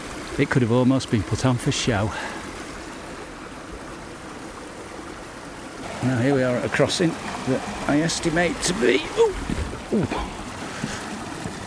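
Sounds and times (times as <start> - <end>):
river water flowing at a crossing: 0.0 - 11.6
speech: 0.4 - 2.4, 6.0 - 10.9
wind buffeting: 7.2 - 11.6.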